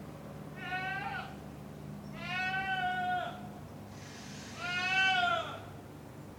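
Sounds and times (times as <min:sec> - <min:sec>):
domestic goat bleating: 0:00.5 - 0:01.4, 0:02.1 - 0:03.5, 0:04.5 - 0:05.7.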